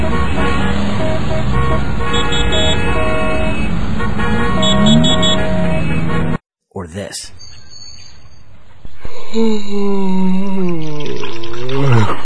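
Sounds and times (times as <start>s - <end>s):
car horns honking: 0.0s - 6.4s
commuter road traffic rumbling: 0.0s - 6.4s
speech: 9.4s - 12.1s.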